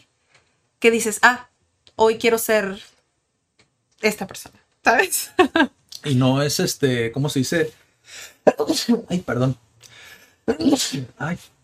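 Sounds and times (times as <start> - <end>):
speech: 0.8 - 2.9, 4.0 - 9.6, 10.5 - 11.6
quick breathy inhale: 8.0 - 8.4, 9.8 - 10.5
person sneezing: 10.5 - 11.2.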